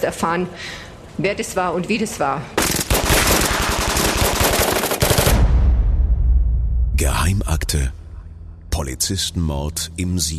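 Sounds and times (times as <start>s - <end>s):
speech: 0.0s - 2.7s, 7.0s - 8.0s, 8.8s - 10.3s
automatic gunfire in rapid bursts: 2.6s - 5.5s
low rumbling echo of gunfire: 5.3s - 10.3s.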